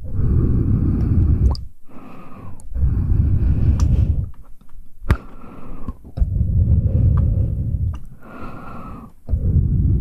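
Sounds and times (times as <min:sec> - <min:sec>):
heavy breathy exhales and sighs: 0:00.0 - 0:04.3, 0:05.1 - 0:10.0
sharp wet mouth clicks and smacks: 0:01.4 - 0:01.7.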